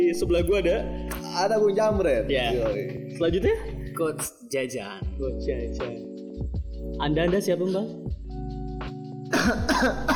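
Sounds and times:
speech: 0:00.1 - 0:08.1, 0:09.5 - 0:10.1
harsh breathy coughs: 0:09.3 - 0:10.1.

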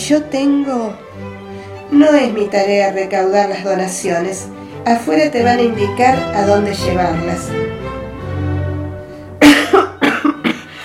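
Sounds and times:
speech: 0:00.1 - 0:08.0
dry coughs: 0:09.4 - 0:10.8.

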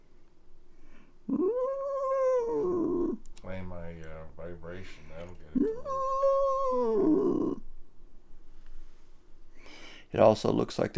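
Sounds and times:
person imitating a cat meowing: 0:01.3 - 0:03.2, 0:05.6 - 0:07.6
speech: 0:10.1 - 0:10.9.

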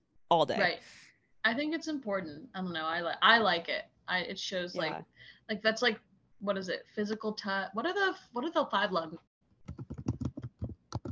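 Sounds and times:
speech: 0:00.3 - 0:09.9
rapid typing on a computer keyboard: 0:09.7 - 0:11.1.

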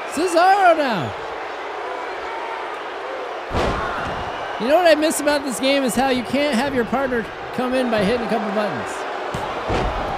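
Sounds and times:
speech: 0:00.2 - 0:01.3, 0:04.6 - 0:09.8
heavy thud of a slip slam move in a wrestling video game: 0:03.5 - 0:04.4.

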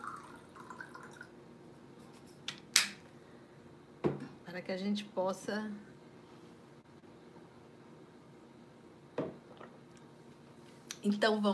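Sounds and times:
water trickling into a container: 0:00.0 - 0:01.3
speech: 0:04.6 - 0:05.9, 0:11.0 - 0:11.5.

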